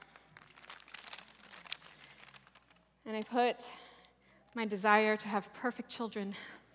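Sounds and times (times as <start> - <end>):
paper bag crinkling: 0.0 - 2.8
speech: 3.1 - 3.9, 4.5 - 6.6.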